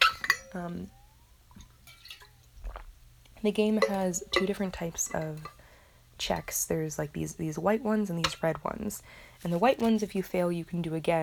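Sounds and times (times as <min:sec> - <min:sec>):
glass of water clinking: 0:00.0 - 0:02.8, 0:03.8 - 0:05.6
low hum: 0:00.0 - 0:11.2
speech: 0:00.5 - 0:01.0, 0:03.4 - 0:05.6, 0:06.2 - 0:11.2
person gulping water: 0:02.6 - 0:03.0.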